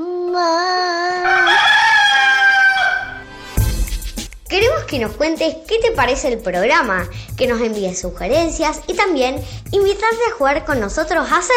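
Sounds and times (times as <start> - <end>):
speech: 0.4 - 0.8, 4.9 - 11.5
rooster crowing: 1.2 - 3.6.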